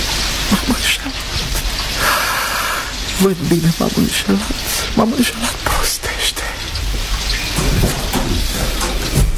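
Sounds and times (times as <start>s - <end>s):
heavy rain pouring down during a thunderstorm: 0.0s - 9.3s
speech: 0.6s - 1.5s, 3.2s - 6.1s.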